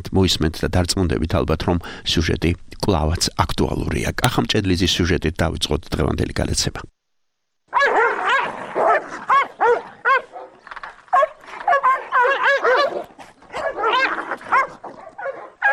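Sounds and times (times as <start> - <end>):
speech: 0.0 - 7.0
Caucasian shepherd dogs barking while fighting in a forest: 7.7 - 15.7.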